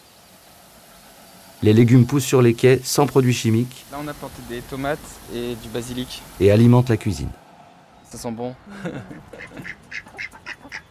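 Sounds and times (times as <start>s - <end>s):
speech: 1.6s - 7.4s, 8.1s - 10.1s
laughter: 8.6s - 9.8s
ducks quacking: 9.1s - 10.9s.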